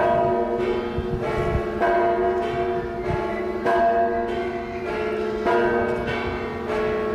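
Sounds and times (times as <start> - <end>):
three church bells in Oiartzun pealing, calling to mass, rung by two people: 0.0 - 7.1.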